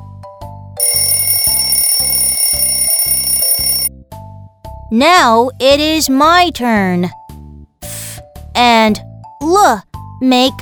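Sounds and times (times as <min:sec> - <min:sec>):
alarm clock ringing: 0:00.8 - 0:03.9
speech: 0:04.9 - 0:07.2, 0:08.6 - 0:10.6.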